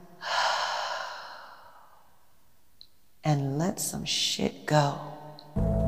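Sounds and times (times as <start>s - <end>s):
long breath drawn during guided meditation: 0.1s - 2.2s
speech: 3.2s - 5.7s.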